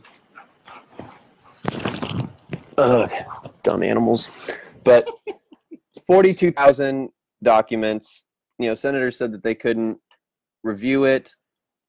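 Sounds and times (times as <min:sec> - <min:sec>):
dog yelping roughly: 0:00.0 - 0:01.7
faint scuffs: 0:00.0 - 0:02.7
rustling: 0:00.0 - 0:03.6
speech: 0:02.8 - 0:05.2, 0:06.1 - 0:10.0, 0:10.6 - 0:11.4.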